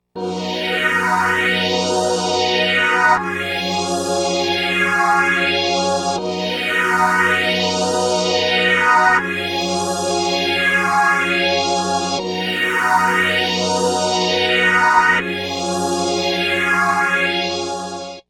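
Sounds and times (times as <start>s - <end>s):
stringtron string synthesizer: 0.2s - 18.2s.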